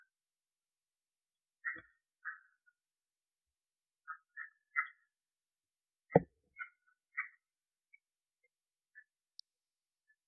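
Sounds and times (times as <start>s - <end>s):
red-eyed tree frog Agalychnis callidryas clucking chuck calls: 4.1s - 5.0s, 6.6s - 7.4s.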